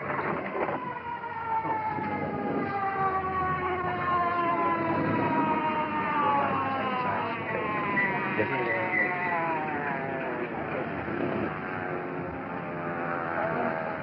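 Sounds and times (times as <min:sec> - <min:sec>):
distant ambulance siren: 0:00.0 - 0:14.0.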